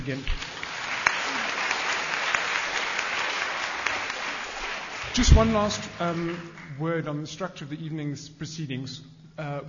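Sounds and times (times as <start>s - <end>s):
speech: 0.0s - 0.4s, 5.2s - 9.6s
audience applauding speakers at an evening talk: 0.4s - 6.8s.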